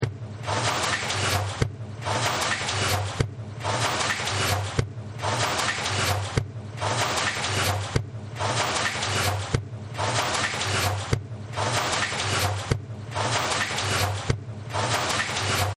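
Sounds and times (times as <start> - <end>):
factory background noise: 0.0 - 15.7.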